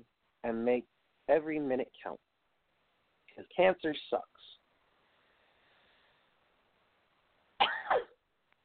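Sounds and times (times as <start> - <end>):
speech: 0.6 - 2.3, 3.6 - 4.4
harsh cough into the microphone: 7.6 - 8.2.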